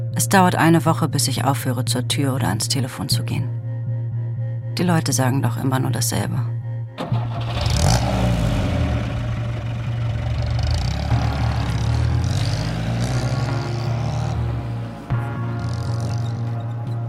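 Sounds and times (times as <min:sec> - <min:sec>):
speech: 0:00.2 - 0:03.6, 0:04.8 - 0:07.5
car engine starting and pulling away: 0:07.0 - 0:16.9.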